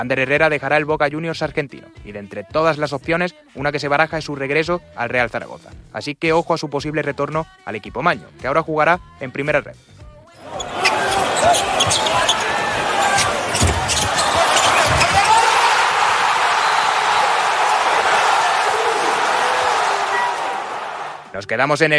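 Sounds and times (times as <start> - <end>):
speech: 0.0 - 10.8, 21.4 - 21.9
arena crowd roar at the winning basket of a basketball game: 10.4 - 21.4.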